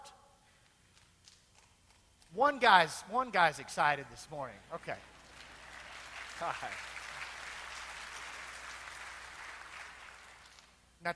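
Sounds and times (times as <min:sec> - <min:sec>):
speech: 0:02.3 - 0:05.1, 0:06.4 - 0:07.0
audience clapping: 0:04.7 - 0:10.8.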